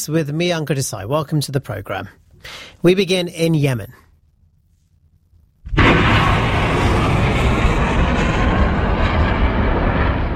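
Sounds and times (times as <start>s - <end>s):
speech: 0.0s - 4.0s
missiles being fired on a port city: 5.7s - 10.3s.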